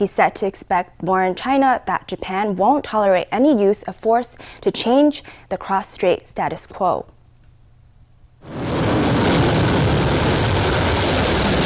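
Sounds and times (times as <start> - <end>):
speech: 0.0 - 7.1
jet engine roar at full power: 8.4 - 11.6.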